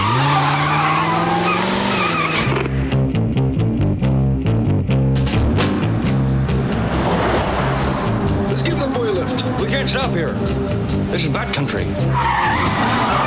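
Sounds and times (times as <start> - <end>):
convertible car tires squealing as it skids to a stop: 0.0 - 2.7, 12.0 - 13.2
convertible car engine rumbling and pulsing: 0.0 - 13.2
road noise: 0.0 - 13.2.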